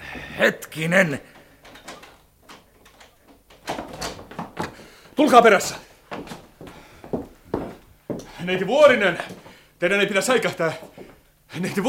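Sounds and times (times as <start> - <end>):
speech: 0.4 - 1.4, 5.2 - 5.9, 8.4 - 11.8
door latch rattling clunks: 1.6 - 4.8.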